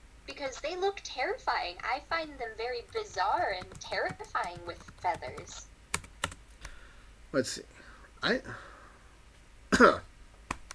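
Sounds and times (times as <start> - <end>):
speech: 0.4 - 5.7, 7.3 - 8.7, 9.8 - 10.1
faint click or catch of breath: 6.6 - 7.1
throaty cough: 9.7 - 10.1.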